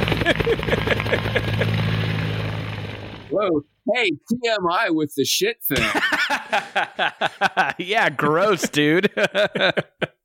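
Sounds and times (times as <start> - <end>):
laughter: 0.0 - 1.8, 5.7 - 10.2
helicopter sound effect with droning engine and rotor wash: 0.0 - 3.3
speech: 3.3 - 10.2.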